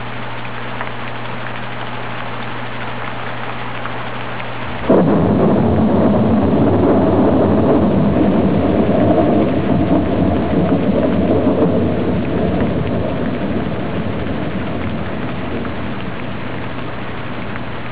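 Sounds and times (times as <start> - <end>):
storm: 4.8 - 17.8.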